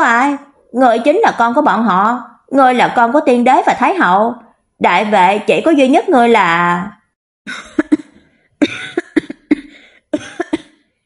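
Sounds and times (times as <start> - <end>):
speech: 0.3 - 7.9
man coughing in harsh fits: 7.6 - 10.8.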